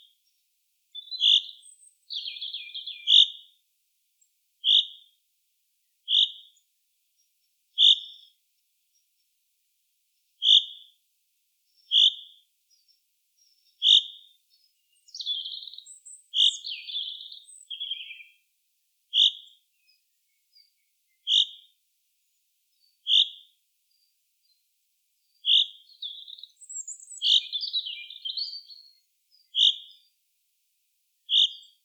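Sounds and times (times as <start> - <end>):
Fringilla coelebs singing: 1.0 - 3.4, 7.8 - 8.4, 11.7 - 18.4, 19.1 - 24.6, 25.2 - 30.2, 31.3 - 31.8.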